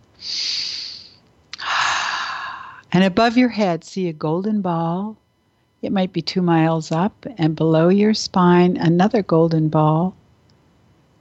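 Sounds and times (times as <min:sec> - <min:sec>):
speech: 0:00.2 - 0:00.4, 0:02.9 - 0:05.2, 0:05.8 - 0:10.2
deep breaths during a guided relaxation exercise: 0:00.2 - 0:02.9.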